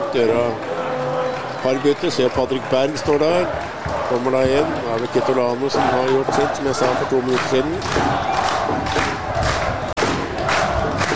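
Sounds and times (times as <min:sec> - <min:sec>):
large stadium crowd roaring and applauding: 0:00.0 - 0:11.1
speech: 0:00.1 - 0:00.7, 0:01.6 - 0:09.2.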